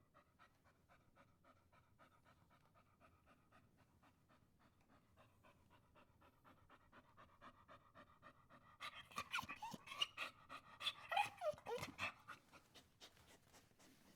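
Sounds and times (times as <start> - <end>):
dog whining: 8.8 - 12.6.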